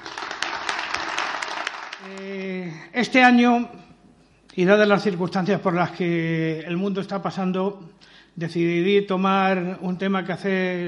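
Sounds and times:
crowd applauding: 0.0s - 2.3s
speech: 2.0s - 3.8s, 4.6s - 10.8s.

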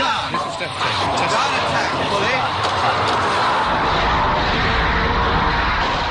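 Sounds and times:
loud rushing roar of submarine torpedoes being fired: 0.0s - 6.0s
submarine torpedo launch thuds: 1.7s - 6.0s.

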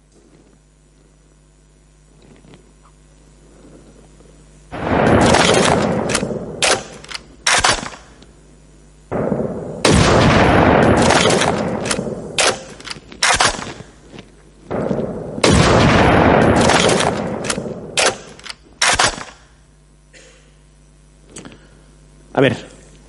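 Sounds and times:
rifle shots with long decay: 4.7s - 8.2s, 9.1s - 14.0s, 14.7s - 19.5s
faint sharp cracks and clicks: 5.6s - 8.3s, 11.1s - 15.1s, 16.7s - 19.5s.

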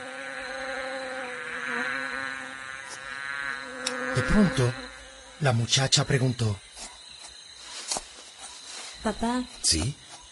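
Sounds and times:
bees buzzing around flowers in a garden: 0.0s - 5.7s
speech: 4.2s - 4.8s, 5.4s - 6.6s, 9.0s - 10.0s.

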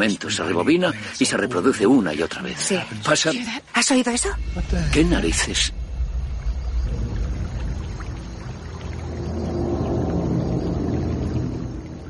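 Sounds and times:
speech: 0.0s - 5.8s
water splashing and sloshing: 4.4s - 12.0s.

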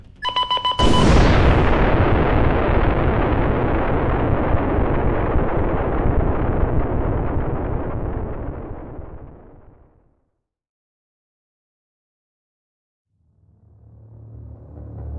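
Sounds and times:
electronic beeping: 0.2s - 1.2s
loud explosion with roaring rumble: 0.6s - 10.0s.

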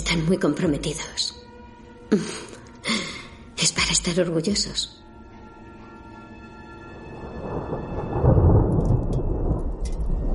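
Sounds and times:
speech: 0.1s - 1.4s, 2.1s - 2.5s, 3.6s - 5.1s
torrential rain: 6.0s - 10.3s
thunder rumbling: 6.8s - 10.3s.

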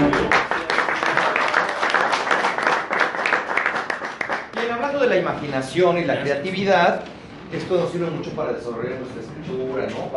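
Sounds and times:
sustained crowd applause: 0.0s - 5.0s
speech: 5.2s - 10.1s.

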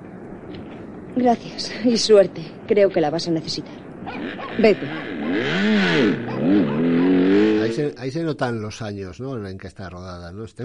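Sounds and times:
speech: 1.2s - 10.6s
motorcycle engine revving and pulling away: 4.0s - 8.0s.

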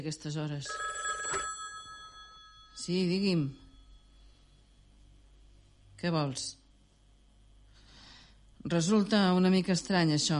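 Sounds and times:
speech: 0.0s - 1.0s, 2.8s - 3.6s, 6.0s - 6.6s, 8.6s - 10.3s
electric telephone bell ringing: 0.7s - 3.8s.

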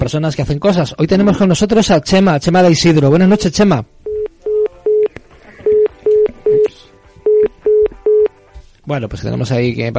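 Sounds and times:
faint noise: 0.0s - 9.9s
speech: 0.1s - 4.0s, 8.9s - 9.9s
telephone keypad tones dialing a call: 5.7s - 6.7s, 7.3s - 8.3s.

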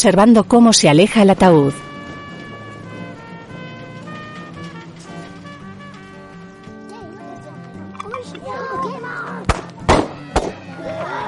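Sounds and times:
speech: 0.0s - 1.9s
children chattering and calling out: 0.9s - 11.2s
firecracker bangs: 1.7s - 6.2s, 9.5s - 10.6s.

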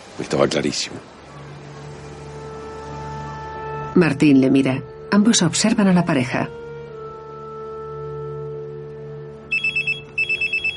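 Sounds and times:
speech: 0.2s - 1.2s, 4.0s - 6.6s
mobile phone ringing with bright pulsing electronic tones: 9.5s - 10.7s.

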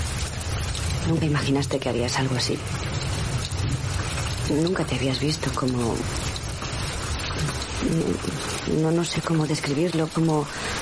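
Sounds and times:
steady dense rain pouring down: 0.0s - 10.8s
speech: 1.1s - 3.0s, 4.5s - 6.3s, 7.8s - 10.8s.

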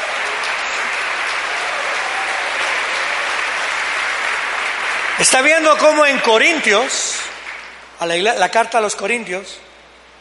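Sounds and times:
audience applauding: 0.0s - 8.0s
speech: 5.2s - 7.1s, 8.0s - 9.7s.

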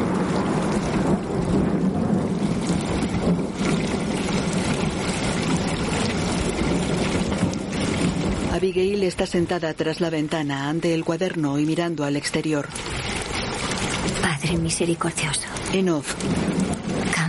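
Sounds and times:
heavy torrential rain: 0.0s - 17.2s
speech: 8.6s - 13.1s, 14.4s - 16.7s.

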